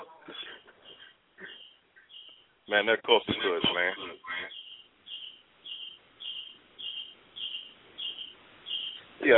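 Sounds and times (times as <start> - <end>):
cricket chirping: 0.9 - 2.6, 4.5 - 9.1
speech: 2.7 - 4.6.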